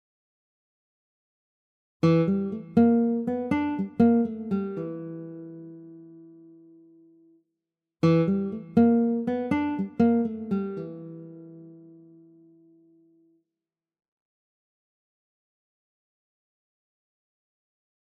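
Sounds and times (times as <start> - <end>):
guitars in stereo: 2.0 - 7.3, 8.0 - 13.2.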